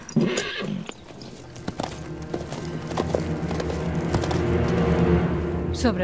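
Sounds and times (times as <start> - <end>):
horse whinnying: 0.0 - 4.8
speech: 0.2 - 0.5, 5.8 - 6.0
horse snorting: 0.3 - 5.5
horse hooves clopping on a hard surface: 0.3 - 5.6.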